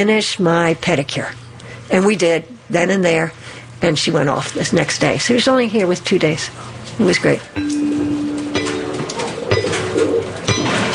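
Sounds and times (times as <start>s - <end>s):
speech: 0.0s - 7.9s
pigeons cooing: 9.0s - 10.9s.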